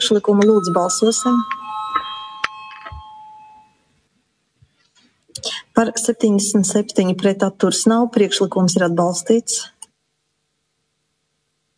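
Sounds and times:
bell rung in a parliament chamber to call a vote: 0.0s - 3.9s
speech: 0.1s - 1.6s, 5.8s - 9.8s.

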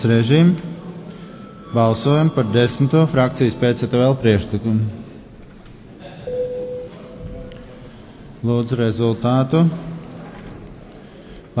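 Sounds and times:
speech: 0.0s - 0.7s, 1.7s - 5.0s, 8.4s - 9.8s
murmur: 0.0s - 11.5s
parliamentary chamber bell ringing before a vote: 1.1s - 3.2s.

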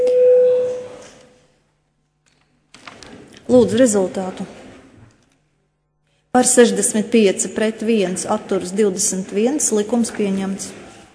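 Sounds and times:
electronic bell ringing to call a vote in parliament: 0.0s - 1.0s
speech: 3.5s - 4.6s, 6.4s - 10.8s.

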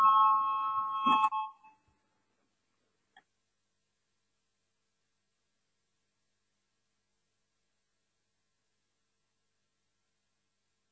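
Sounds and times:
parliamentary voting bell electronic tone: 0.0s - 1.8s.

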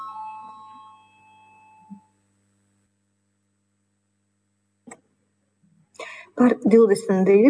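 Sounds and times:
parliamentary voting bell ringing before a vote: 0.0s - 1.9s
speech: 6.4s - 7.4s.

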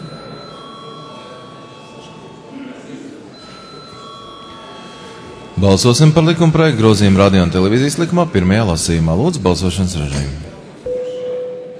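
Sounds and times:
electric bell rung to call members to a vote in the Latvian parliament chamber: 0.0s - 7.8s, 10.9s - 11.7s
speech: 5.6s - 10.5s.

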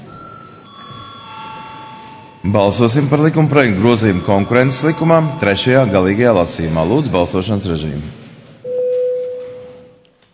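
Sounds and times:
electric bell ringing in a parliament chamber before a vote: 0.0s - 6.8s
speech: 2.4s - 8.2s.

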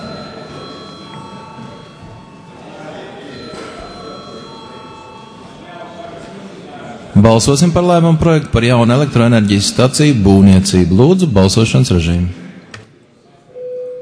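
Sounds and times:
parliamentary chamber bell ringing to call members to vote: 0.0s - 6.1s
faint murmur of voices: 0.0s - 13.6s
speech: 7.2s - 12.4s.

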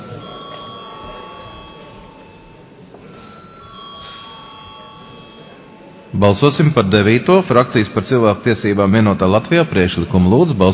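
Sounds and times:
electric bell ringing in a parliament chamber to call a vote: 0.0s - 7.3s
low murmur: 0.0s - 10.7s
speech: 6.2s - 10.7s.

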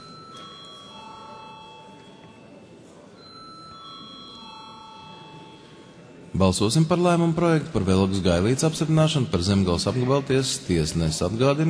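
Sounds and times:
bell ringing in a parliament chamber to call members to a vote: 0.0s - 2.6s, 3.2s - 6.3s
speech: 6.4s - 11.6s.

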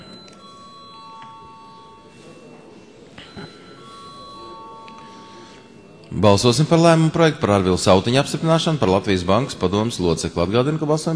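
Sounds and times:
bell rung in a parliamentary session to call a vote: 0.0s - 8.8s
low murmur: 0.0s - 11.1s
speech: 6.1s - 11.1s.

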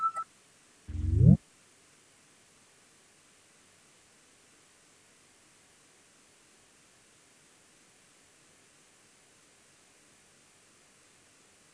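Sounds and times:
parliamentary voting signal electronic beeps: 0.9s - 1.4s
parliamentary voting signal short rising buzzing tone: 0.9s - 1.4s.

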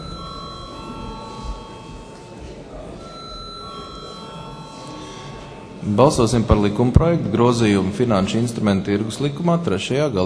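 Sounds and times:
parliament electric voting call bell ringing: 0.0s - 6.8s
faint room murmur in a large hall: 0.0s - 10.2s
speech: 5.8s - 10.2s.

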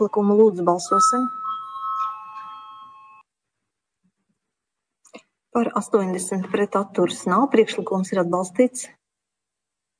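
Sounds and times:
speech: 0.0s - 1.4s, 5.5s - 9.0s
electric voting bell ringing in a parliament chamber: 0.0s - 3.2s.

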